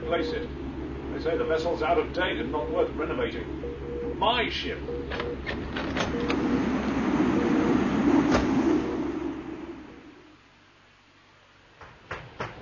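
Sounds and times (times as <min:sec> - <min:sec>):
speech: 0:00.1 - 0:06.6
door on an old vessel clicking open: 0:05.1 - 0:06.4
rush of wind through a storm-damaged walkway: 0:05.6 - 0:10.3
sharp knocks and rattles: 0:11.7 - 0:12.6.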